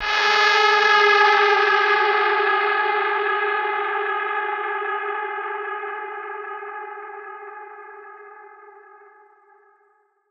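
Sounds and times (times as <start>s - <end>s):
atmosphere in G minor: 0.0s - 9.2s.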